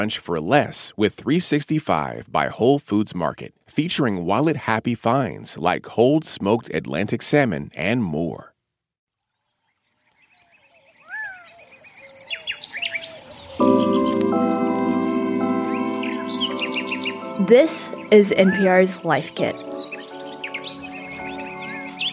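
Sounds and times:
speech: 0.0s - 8.5s, 17.5s - 19.8s
birds chirping and singing: 9.5s - 22.1s
sustained musical tones: 13.6s - 22.1s.

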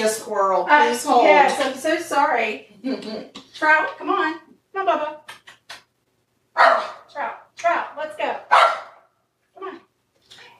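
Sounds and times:
speech: 0.0s - 5.4s
dog barking at another dog while walking past: 6.6s - 7.1s, 8.5s - 9.1s.

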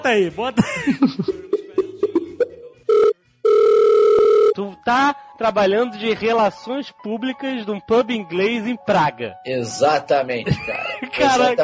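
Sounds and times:
speech: 0.0s - 1.4s, 4.8s - 11.6s
laughter: 0.6s - 2.6s, 10.4s - 11.5s
electronic phone ring tone on a recorded phone call: 1.8s - 4.6s.

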